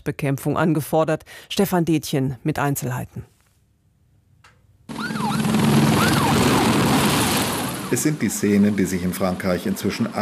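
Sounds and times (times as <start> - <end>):
speech: 0.0 - 3.3, 7.9 - 10.2
emergency vehicle sirens at wildfires on the Atlantic coast of France: 4.9 - 10.2
fire engine water pumps at wildfires on the Atlantic coast of France: 4.9 - 10.2
firefighting aircraft roaring: 4.9 - 10.2
helicopters at wildfires on the Atlantic coast of France: 4.9 - 10.2.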